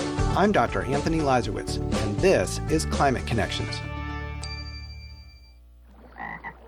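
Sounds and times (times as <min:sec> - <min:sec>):
speech: 0:00.4 - 0:03.9
frog croaking: 0:05.9 - 0:06.6.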